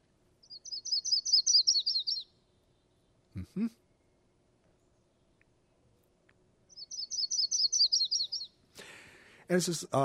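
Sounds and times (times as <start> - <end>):
yellow-rumped warbler singing high rapid trilled phrases: 0.4 - 3.2, 6.7 - 8.6
speech: 3.4 - 3.8, 9.5 - 10.0.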